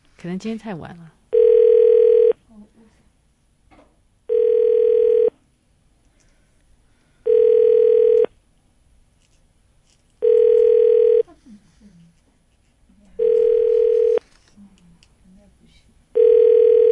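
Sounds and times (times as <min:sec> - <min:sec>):
speech: 0:00.2 - 0:01.2
phone ringback tone buzzes, unanswered call: 0:01.3 - 0:02.4, 0:04.3 - 0:05.3, 0:07.2 - 0:08.3, 0:10.2 - 0:11.2, 0:13.2 - 0:14.2, 0:16.2 - 0:16.8.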